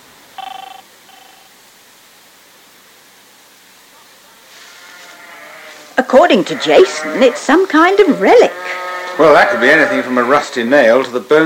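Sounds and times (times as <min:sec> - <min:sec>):
steady hiss: 0:00.0 - 0:11.4
car phone ringing with electronic trilling: 0:00.4 - 0:01.5
speech: 0:06.0 - 0:11.4.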